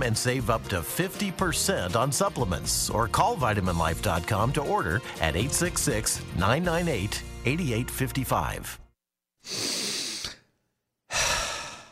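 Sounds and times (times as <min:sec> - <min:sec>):
speech: 0:00.0 - 0:08.8, 0:09.4 - 0:09.7
deep breath: 0:09.4 - 0:11.9.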